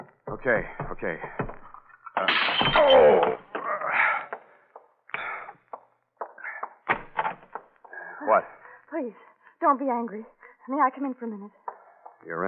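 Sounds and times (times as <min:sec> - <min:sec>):
speech: 0:00.3 - 0:01.4, 0:02.2 - 0:03.4, 0:08.3 - 0:11.6, 0:12.2 - 0:12.4
knocks and clunks of wood and latch: 0:06.8 - 0:07.7
door opening with a loud scraping creak: 0:06.9 - 0:07.8.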